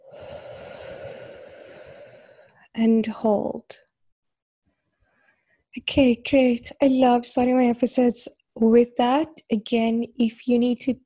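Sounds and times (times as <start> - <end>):
deep breath let out during a guided breathing exercise: 0.0 - 2.7
speech: 2.8 - 3.9, 5.8 - 11.0.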